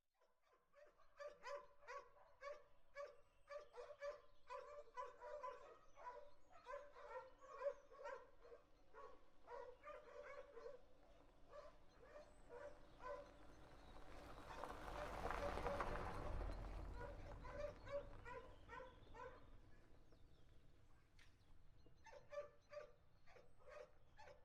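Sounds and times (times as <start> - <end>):
dogs: 0.2 - 20.0, 21.9 - 24.4
car: 12.3 - 20.3.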